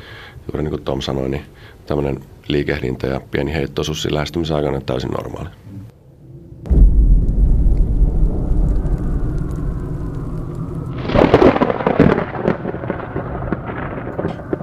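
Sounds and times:
speech: 0.5 - 5.8
thunderclap: 6.6 - 14.6
steady wash of rain: 6.8 - 14.6.

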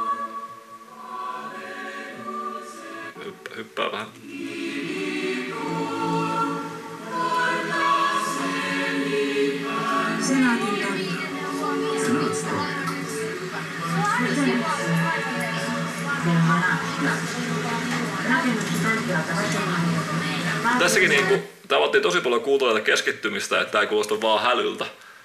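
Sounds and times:
choir singing sustained harmonies outdoors: 0.0 - 21.5
speech: 3.6 - 4.6, 20.8 - 25.0
city street and tram noise: 10.1 - 21.4.

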